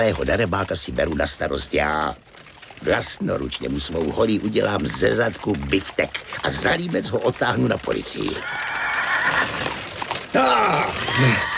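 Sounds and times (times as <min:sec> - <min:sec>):
speech: 0:00.0 - 0:08.7, 0:10.3 - 0:11.5
horse neighing: 0:08.3 - 0:11.5.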